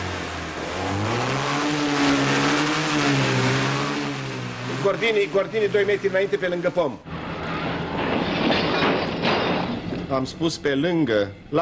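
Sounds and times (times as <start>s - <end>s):
car engines revving: 0.0s - 9.2s
speech: 4.9s - 7.1s, 10.1s - 11.6s.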